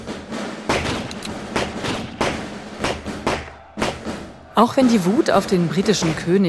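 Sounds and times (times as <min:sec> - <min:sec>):
musket shots: 0:00.7 - 0:04.2
speech: 0:04.6 - 0:06.4.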